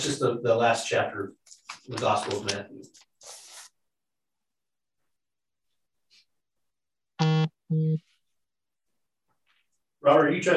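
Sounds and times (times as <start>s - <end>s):
speech: 0.0s - 3.4s, 7.7s - 8.1s, 10.0s - 10.5s
phone message notification tones: 7.2s - 8.0s.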